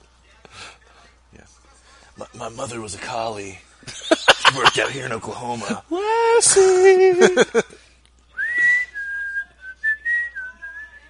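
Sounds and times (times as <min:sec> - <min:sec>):
speech: 0:02.2 - 0:07.9
laughter: 0:03.9 - 0:07.8
person whistling a wavering tune: 0:08.4 - 0:11.0.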